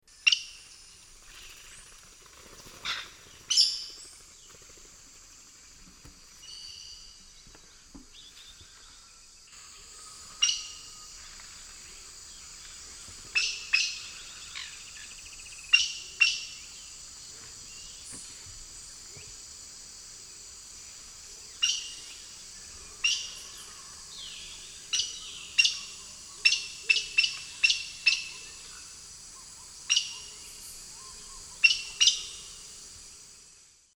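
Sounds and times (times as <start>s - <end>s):
Pteroglossus pluricinctus calls in the Eastern Lowlands of South America: 9.6s - 11.4s, 12.0s - 17.0s, 21.4s - 22.3s, 22.9s - 32.8s.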